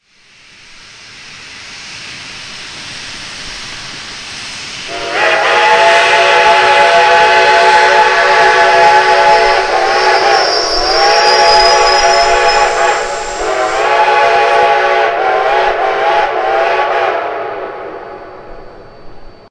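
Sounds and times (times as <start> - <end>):
steam whistles: 4.8 - 19.4.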